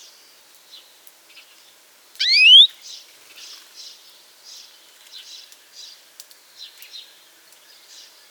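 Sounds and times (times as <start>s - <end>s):
European greenfinch Chloris chloris giving quiet soft notes: 2.2s - 2.7s.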